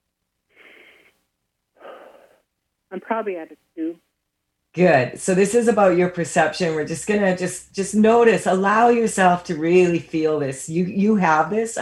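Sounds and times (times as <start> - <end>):
deep breath: 0.5 - 1.2, 1.8 - 2.5
speech: 2.9 - 4.1, 4.8 - 11.8.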